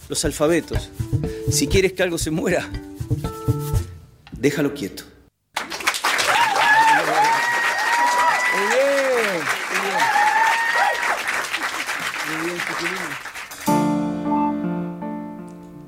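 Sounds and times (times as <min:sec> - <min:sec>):
music: 0:00.0 - 0:04.8, 0:13.6 - 0:15.8
speech: 0:00.1 - 0:03.6, 0:04.4 - 0:05.1
audience voices cheering and calling out: 0:05.6 - 0:13.3
loud sustained applause from a large audience: 0:05.6 - 0:13.7.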